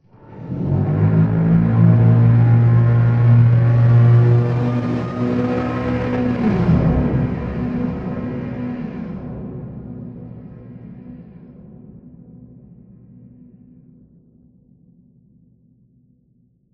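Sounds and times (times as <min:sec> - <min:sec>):
cables pulsing: 0:01.0 - 0:08.8.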